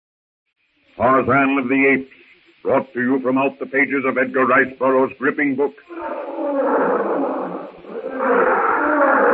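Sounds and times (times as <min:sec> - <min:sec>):
speech: 0:01.0 - 0:07.2
wild animal roaring in the jungle: 0:05.9 - 0:09.3.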